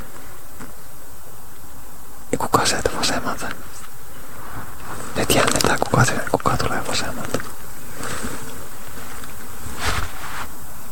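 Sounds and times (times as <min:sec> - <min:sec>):
steady buzzing outdoor background: 0:00.0 - 0:10.9
frog croaking in short raspy bursts: 0:01.6 - 0:09.5
speech: 0:02.3 - 0:03.7, 0:05.0 - 0:08.2.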